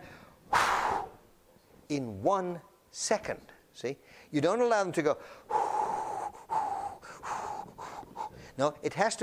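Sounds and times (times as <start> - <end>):
forceful exhalation in a one-second lung function test: 0.0 - 1.2, 5.2 - 8.6
speech: 1.9 - 5.7, 8.6 - 9.2.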